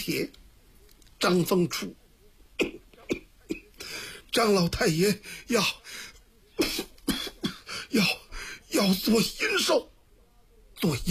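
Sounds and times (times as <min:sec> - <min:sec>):
speech: 0:00.0 - 0:00.4, 0:01.2 - 0:02.0, 0:04.3 - 0:06.9, 0:07.9 - 0:09.9, 0:10.8 - 0:11.1
storyteller imitating weak hoarse coughs of a sickly man: 0:06.6 - 0:08.1.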